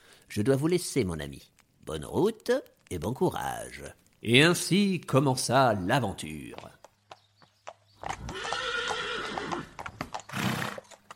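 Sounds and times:
speech: 0.4s - 6.8s
horse hooves clip-clopping: 0.4s - 11.1s
horse whinnying: 8.1s - 11.0s.

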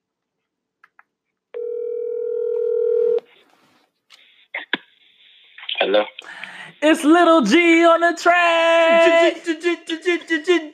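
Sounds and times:
telephone dial tone: 1.6s - 3.2s
speech: 5.9s - 10.7s.

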